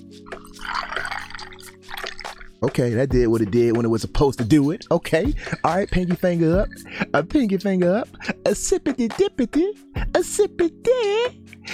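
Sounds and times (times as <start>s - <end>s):
drink pouring into a glass: 0.3s - 2.6s, 5.1s - 7.0s
speech: 2.6s - 11.7s.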